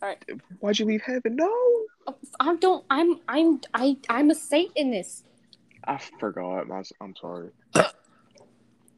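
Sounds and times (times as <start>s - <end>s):
speech: 0.0s - 8.0s
single short burp: 5.8s - 8.1s.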